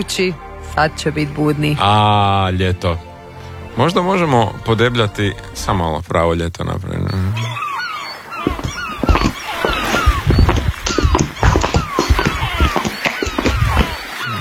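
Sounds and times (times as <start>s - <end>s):
speech: 0.0s - 3.1s, 3.8s - 7.5s
seagull calls: 7.1s - 14.4s
dog running on a laminate floor: 8.4s - 14.0s.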